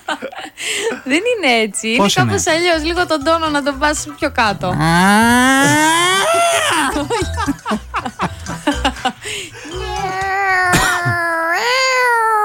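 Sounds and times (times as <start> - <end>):
speech: 0.2 - 6.3
person imitating fighting yowling cats: 4.5 - 7.0, 9.8 - 12.4
choppy laughing sounds: 4.5 - 10.3.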